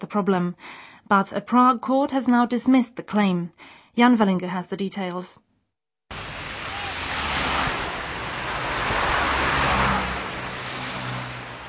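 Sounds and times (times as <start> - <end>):
speech: 0.1 - 5.5
highway traffic of cars and trucks: 6.1 - 11.6.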